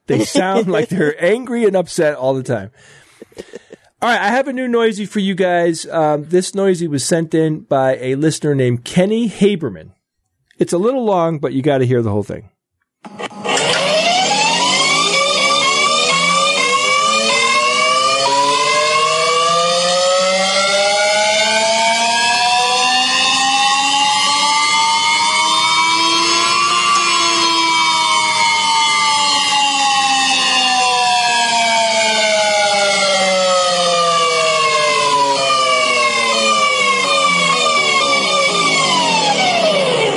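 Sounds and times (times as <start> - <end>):
laughter: 0.1 - 1.9, 3.0 - 3.9
speech: 0.1 - 10.0, 10.6 - 13.2
hover bike whining drone: 13.2 - 40.1.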